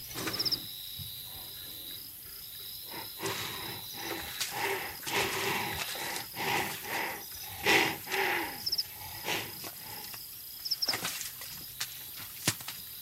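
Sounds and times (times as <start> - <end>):
chorus of insects droning: 0.0 - 13.0
northern white rhino snorting and grunting: 2.9 - 10.2.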